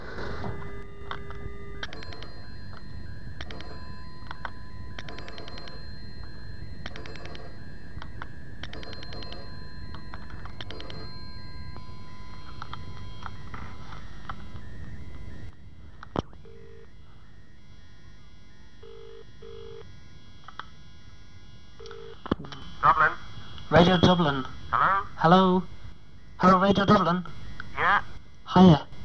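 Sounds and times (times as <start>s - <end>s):
telephone dial tone: 0.0s - 17.0s, 18.8s - 19.9s, 21.8s - 22.3s
touch-tone dialing beeps: 1.8s - 15.5s
speech: 23.8s - 24.6s, 25.2s - 25.7s, 26.4s - 27.4s, 28.6s - 28.8s.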